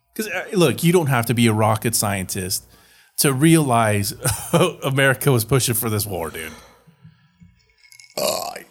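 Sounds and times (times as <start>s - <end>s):
speech: 0.2s - 6.7s, 8.2s - 8.4s
burp: 8.2s - 8.6s.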